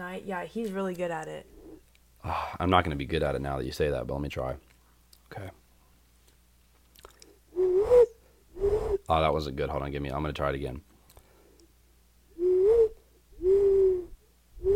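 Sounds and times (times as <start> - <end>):
speech: 0.1 - 1.6, 2.2 - 4.7, 5.3 - 5.6, 9.1 - 10.9
person imitating owl hoots: 7.6 - 9.1, 12.4 - 14.7.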